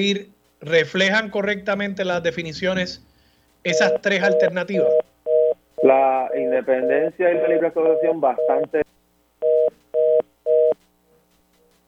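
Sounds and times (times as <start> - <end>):
speech: 0.0 - 5.0, 5.8 - 8.9
telephone tone beeps after a dropped call: 3.7 - 8.6, 9.4 - 10.8.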